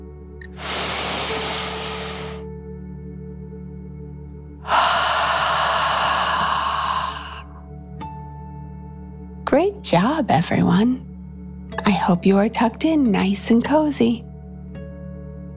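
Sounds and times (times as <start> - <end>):
deep breathing in and out as a calming exercise at bedtime: 0.4 - 2.4, 4.6 - 7.7
speech: 9.5 - 11.1, 11.9 - 14.3.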